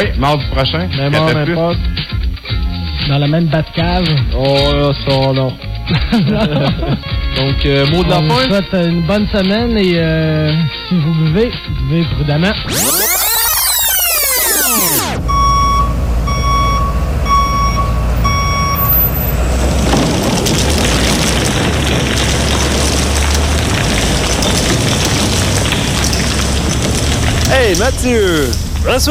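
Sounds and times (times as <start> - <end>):
speech: 0.0 - 13.1, 27.7 - 29.0
laughter: 5.9 - 7.3
ten-wheeler truck reversing beeps in a parking lot: 12.7 - 19.3
ten-wheeler truck engine rumble: 12.7 - 29.0
roaring crash: 19.3 - 29.0.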